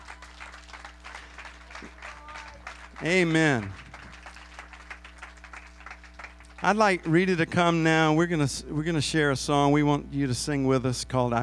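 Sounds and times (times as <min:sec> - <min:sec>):
faint murmurs: 0:00.0 - 0:04.9
audience clapping as an offering to the Lord: 0:00.0 - 0:07.4
low hum: 0:00.0 - 0:11.4
speech: 0:03.0 - 0:03.8, 0:06.6 - 0:11.4.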